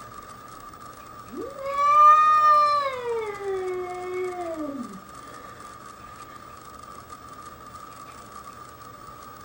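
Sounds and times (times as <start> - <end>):
bobcat yowling: 1.3 - 5.0.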